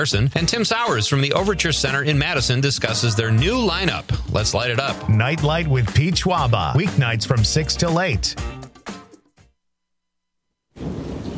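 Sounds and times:
speech: 0.0 - 8.6
sharp loud burst of thunder: 10.8 - 11.3.

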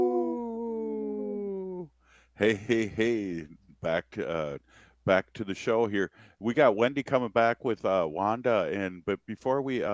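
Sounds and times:
wolf howling: 0.0 - 1.8
speech: 2.4 - 9.9.

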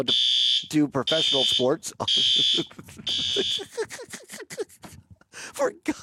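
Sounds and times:
fire alarm blaring in a broadcast studio: 0.0 - 3.7
speech: 0.0 - 4.6, 5.6 - 6.0
laughter: 1.0 - 6.0.

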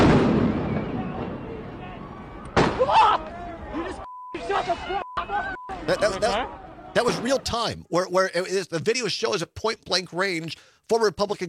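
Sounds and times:
rubber bullets fired by police on horseback at protesters: 0.0 - 1.6, 2.5 - 2.9
people shouting during a street clash: 0.7 - 7.0
steady beep tone: 4.0 - 6.4
speech: 5.9 - 11.4.

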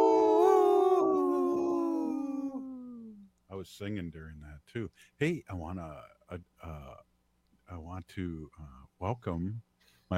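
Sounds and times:
wolf howling: 0.0 - 3.0
speech: 3.6 - 7.1, 7.7 - 10.1.

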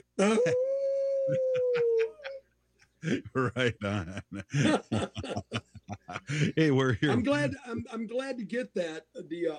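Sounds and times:
speech: 0.2 - 0.7, 1.3 - 2.1, 3.0 - 9.5
person howling like a wolf: 0.2 - 2.3
laughter: 1.3 - 2.4, 3.0 - 7.8.

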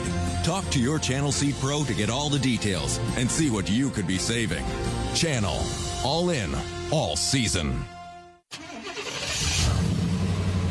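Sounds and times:
speech: 0.4 - 8.6
suburban truck engine starting, revving and pulling away: 8.5 - 10.6.

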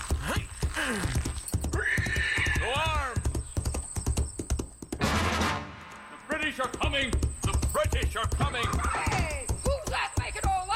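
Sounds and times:
horse hooves clopping: 0.0 - 10.7
horse whinnying: 1.1 - 3.2.

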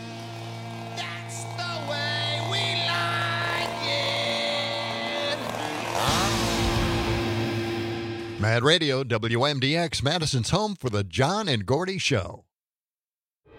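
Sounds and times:
chainsaw engine running and revving: 0.0 - 8.4
speech: 8.4 - 12.5.

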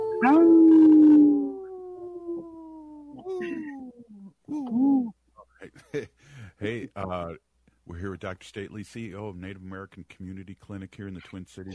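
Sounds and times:
wolves howling in chorus: 0.0 - 3.6
speech: 0.2 - 0.7, 5.8 - 11.7.

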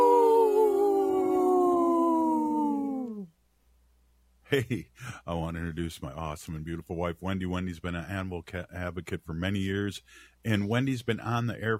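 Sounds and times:
wolf howling: 0.0 - 3.3
speech: 4.5 - 11.7.

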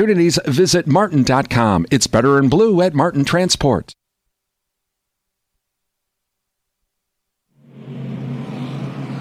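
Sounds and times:
speech: 0.0 - 4.0
NASCAR race car engines roaring on pit road at COTA: 7.6 - 9.1.

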